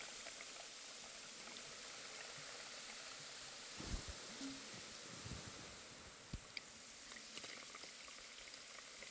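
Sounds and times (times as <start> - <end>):
carbonated water fizzing and popping: 0.0 - 9.0
low thumps: 3.8 - 4.2.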